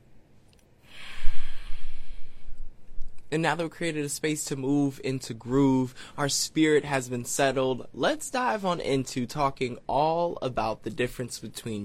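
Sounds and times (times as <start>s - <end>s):
long deep inhalation during a guided breathing moment: 0.8s - 2.8s
speech: 3.3s - 11.8s.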